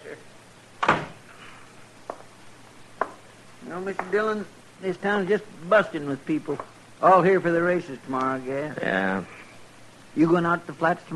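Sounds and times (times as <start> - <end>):
door swinging shut with a solid thud: 0.8 - 1.2
speech: 3.7 - 9.4, 10.1 - 11.1.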